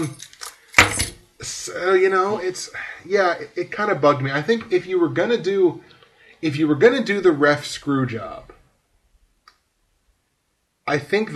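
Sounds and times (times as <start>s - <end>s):
speech: 0.0s - 0.2s, 1.4s - 8.6s, 10.9s - 11.3s
keys jangling and clinking: 0.0s - 1.2s.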